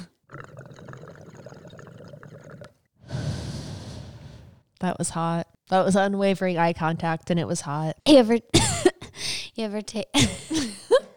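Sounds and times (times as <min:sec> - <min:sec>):
person inhaling vapour from a dab: 0:00.0 - 0:04.7
speech: 0:04.8 - 0:08.8, 0:09.6 - 0:10.8.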